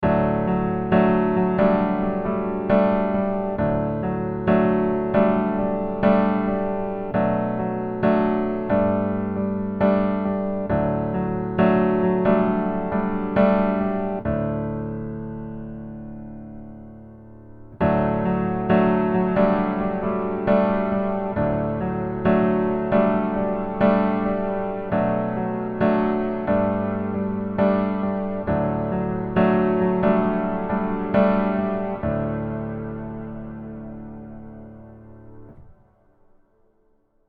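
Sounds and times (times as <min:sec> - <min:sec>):
smooth piano plate: 0:00.0 - 0:36.6.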